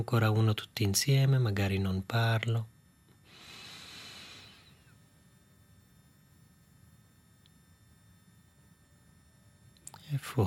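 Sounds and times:
speech: 0.0 - 2.7, 10.3 - 10.4
deep inhale through the nose: 3.2 - 4.9.

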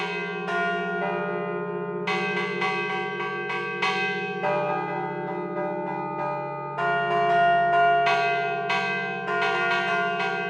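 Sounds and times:
three church bells ringing a Christmas novena peal: 0.0 - 10.4.

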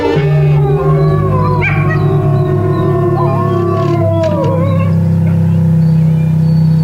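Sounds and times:
low droning musical backdrop on a music record: 0.0 - 6.8
several wolves howling on a music record: 0.0 - 6.8.

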